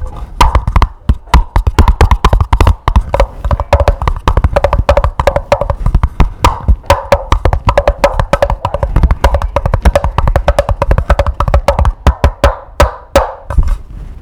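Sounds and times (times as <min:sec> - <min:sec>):
clack box noise in Phnom Penh Cambodia: 0:00.4 - 0:13.7.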